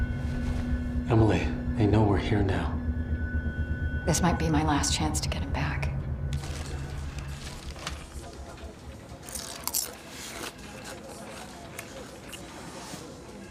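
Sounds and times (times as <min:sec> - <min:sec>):
low hum: 0:00.0 - 0:13.5
speech: 0:01.1 - 0:02.8, 0:04.1 - 0:05.9
person munching a crunchy snack: 0:06.4 - 0:13.5.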